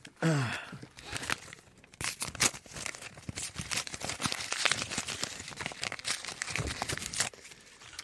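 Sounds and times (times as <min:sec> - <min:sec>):
breathy sound: 0:00.1 - 0:01.6
paper envelope being ripped open and handled: 0:01.0 - 0:08.0.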